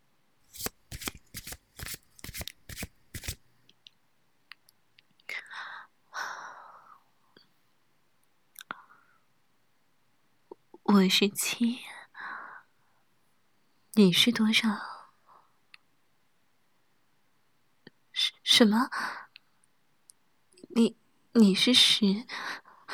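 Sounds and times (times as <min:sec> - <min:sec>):
riffle of playing cards being shuffled: 0:00.5 - 0:03.4
speech: 0:11.0 - 0:11.9, 0:14.0 - 0:14.9, 0:18.6 - 0:19.2, 0:20.8 - 0:22.4.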